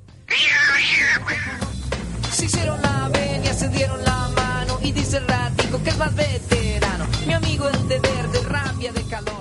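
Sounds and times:
cat meowing: 0:00.3 - 0:01.6
speech: 0:02.4 - 0:09.3.

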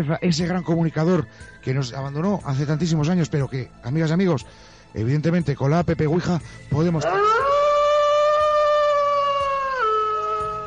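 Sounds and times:
speech: 0:00.0 - 0:07.7
several wolves howling together: 0:07.0 - 0:10.6.

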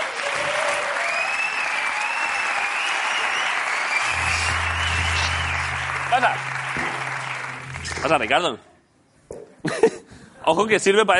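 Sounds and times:
crowd cheering: 0:00.0 - 0:08.6
large crowd audience applause: 0:00.0 - 0:08.6
speech: 0:06.2 - 0:06.5, 0:08.0 - 0:08.7, 0:10.4 - 0:11.1.

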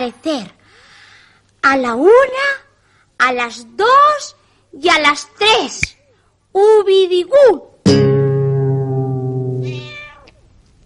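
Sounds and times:
speech: 0:00.0 - 0:00.6, 0:01.6 - 0:02.6, 0:03.2 - 0:06.0, 0:06.6 - 0:08.1
loud drawn-out cat meow: 0:09.4 - 0:10.4.

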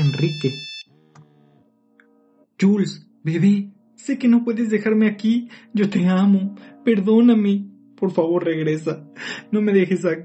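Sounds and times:
mobile phone ringing with electronic ringtone: 0:00.0 - 0:00.9
speech: 0:00.2 - 0:00.7, 0:02.6 - 0:10.2.

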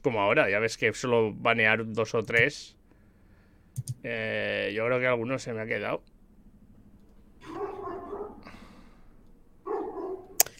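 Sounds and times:
speech: 0:00.0 - 0:02.8, 0:03.8 - 0:06.1
sharp click: 0:03.8 - 0:04.0, 0:10.3 - 0:10.5
dog barking: 0:07.4 - 0:08.5, 0:09.6 - 0:10.4.

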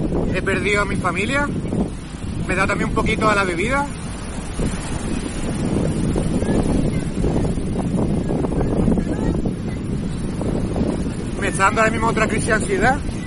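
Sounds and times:
ocean surf roar: 0:00.0 - 0:13.2
wind buffeting the microphone: 0:00.0 - 0:13.2
speech: 0:00.3 - 0:05.2, 0:11.6 - 0:13.2.

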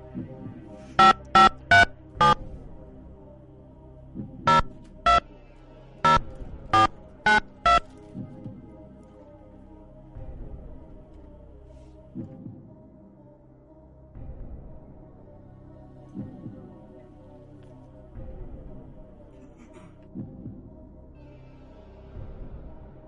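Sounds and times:
telephone number dialed as touch-tone beeps: 0:01.0 - 0:02.4, 0:04.5 - 0:05.2, 0:06.1 - 0:07.8.

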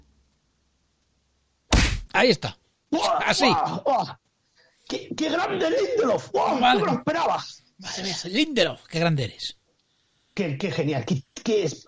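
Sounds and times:
heavy punch-like thump: 0:01.7 - 0:02.1
speech: 0:02.2 - 0:04.2, 0:04.9 - 0:09.6, 0:10.4 - 0:11.8.

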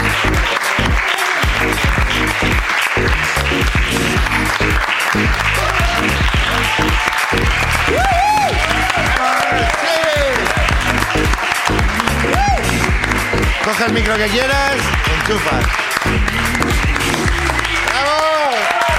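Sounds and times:
audience applause: 0:00.0 - 0:18.9
audience cheers and whoops: 0:05.4 - 0:13.0, 0:17.4 - 0:18.9
speech: 0:14.0 - 0:15.8.

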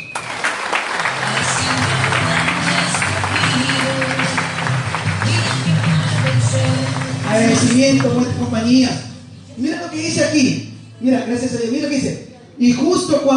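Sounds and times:
loud applause from a sizable crowd: 0:00.0 - 0:08.6
speech: 0:07.8 - 0:13.3.

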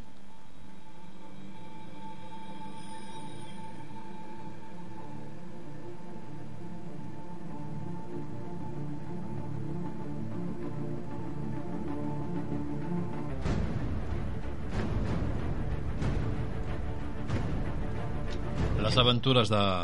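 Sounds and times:
sustained brooding low drone: 0:00.0 - 0:19.0
loud pounding percussion: 0:13.5 - 0:19.2
speech: 0:19.0 - 0:19.8.

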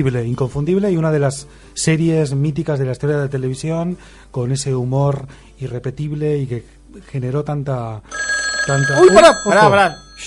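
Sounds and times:
speech: 0:00.0 - 0:10.2
old landline neighbourhood telephone bell ringing: 0:08.1 - 0:10.2.

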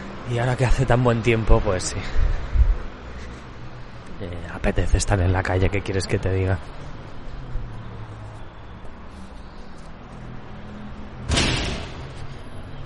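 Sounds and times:
speech: 0:00.3 - 0:02.5, 0:04.2 - 0:06.9
door shutting with a bang: 0:11.2 - 0:12.3.

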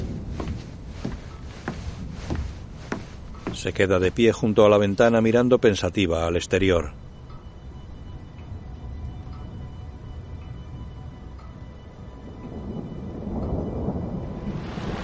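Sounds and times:
deep thunder rumbling: 0:00.0 - 0:04.1, 0:09.0 - 0:15.0
steady rain: 0:00.0 - 0:04.4, 0:07.0 - 0:15.0
speech: 0:03.6 - 0:07.0.

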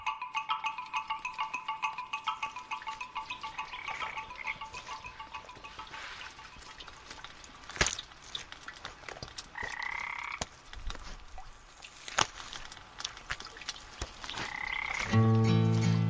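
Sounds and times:
frogs croaking in short buzzing calls and trills: 0:00.0 - 0:08.0, 0:09.5 - 0:10.6, 0:14.2 - 0:15.3
faint crackly wet background: 0:00.0 - 0:15.8.

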